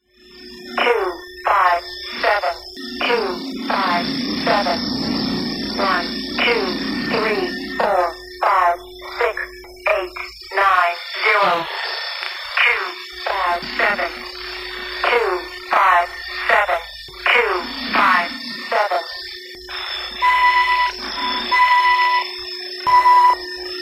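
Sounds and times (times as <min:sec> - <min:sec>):
spaceship ringtone: 0:00.0 - 0:12.2, 0:12.9 - 0:23.8.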